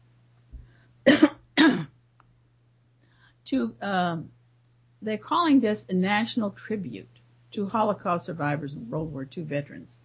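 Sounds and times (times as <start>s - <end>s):
low steady hum: 0.0s - 10.0s
person coughing harshly: 1.1s - 1.9s
person clearing throat: 1.1s - 2.0s
speech: 3.5s - 4.4s, 5.0s - 10.0s.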